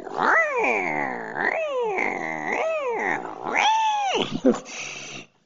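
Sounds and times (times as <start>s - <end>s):
cat yowling after being swung by its tail and thrown: 0.0s - 4.4s
speech: 4.4s - 4.9s.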